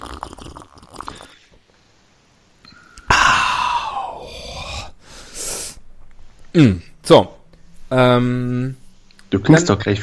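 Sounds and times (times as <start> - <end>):
person sipping a fizzy juice spritzer and swallowing: 0.0 - 1.6
speech: 6.6 - 10.0.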